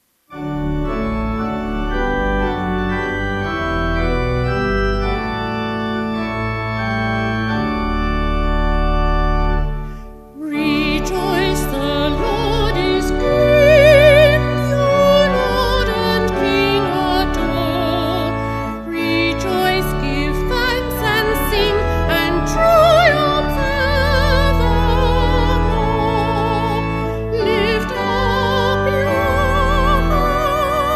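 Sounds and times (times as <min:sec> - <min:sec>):
voice organ: 0:00.3 - 0:30.9.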